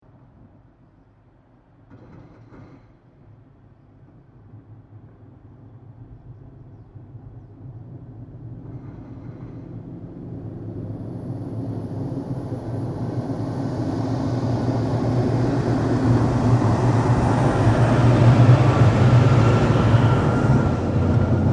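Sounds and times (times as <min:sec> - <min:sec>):
Volvo A40 large articulated dump truck passing by in industrial quarry: 0:08.3 - 0:21.5.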